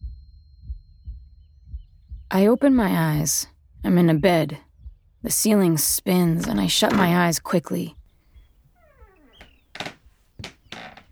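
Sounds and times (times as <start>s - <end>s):
speech: 2.3s - 4.6s, 5.2s - 8.0s
door creaking open with a falling squeal: 6.3s - 7.3s, 8.8s - 11.1s.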